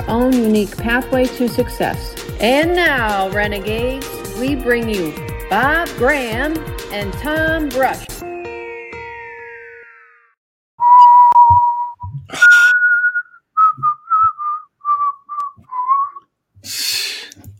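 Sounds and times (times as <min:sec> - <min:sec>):
speech: 0:00.1 - 0:08.2
person whistling a film theme melody: 0:10.8 - 0:16.3.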